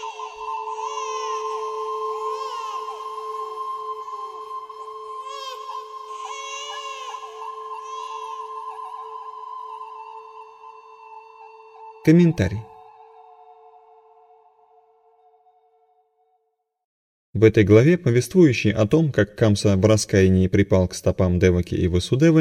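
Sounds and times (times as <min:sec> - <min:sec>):
newborn baby crying: 0:00.0 - 0:11.2
speech: 0:12.1 - 0:12.7, 0:17.4 - 0:22.3.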